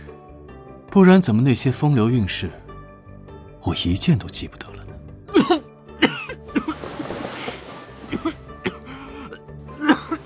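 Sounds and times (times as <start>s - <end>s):
speech: 0.9s - 2.6s, 3.6s - 4.8s, 5.4s - 5.7s
person coughing violently with a hand pressed over the mouth: 5.3s - 6.8s, 8.1s - 10.2s
throat clearing: 5.3s - 6.8s, 8.1s - 10.2s.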